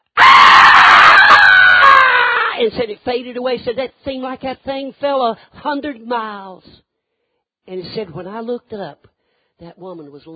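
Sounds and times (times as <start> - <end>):
person imitating a loud piercing scream: 0.0 - 2.6
speech: 2.6 - 6.8, 7.7 - 10.3.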